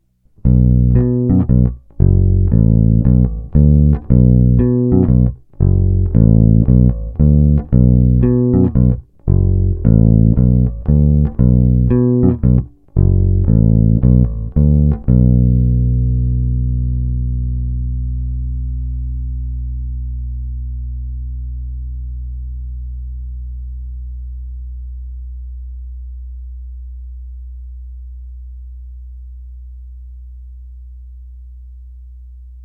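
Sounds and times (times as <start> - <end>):
electric bass guitar played over the pickup: 0.0 - 32.6.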